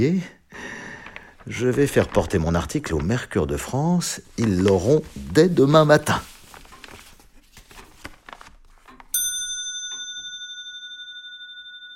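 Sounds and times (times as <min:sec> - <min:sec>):
speech: 0:00.0 - 0:00.7, 0:01.4 - 0:06.3
large astronomical pendulum clock with 120 wheels ticking: 0:08.8 - 0:11.9.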